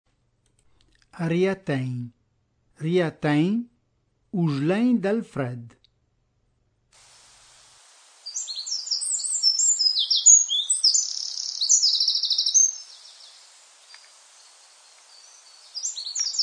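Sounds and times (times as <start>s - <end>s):
speech: 1.2s - 2.2s, 2.8s - 3.7s, 4.3s - 5.8s
Eurasian wren singing shrill song of rapid trills and metallic twitters: 8.2s - 16.4s.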